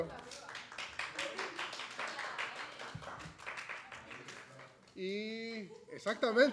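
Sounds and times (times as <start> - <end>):
speech: 0.0 - 0.4, 5.0 - 6.5
crowd applauding: 0.0 - 4.7.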